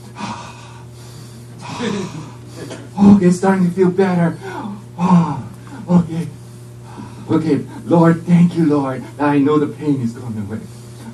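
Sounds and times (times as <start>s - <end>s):
low steady hum: 0.0s - 11.1s
person taking deep breaths to relax through pain: 0.2s - 2.8s, 4.4s - 7.8s
speech: 1.8s - 6.0s, 7.3s - 10.8s.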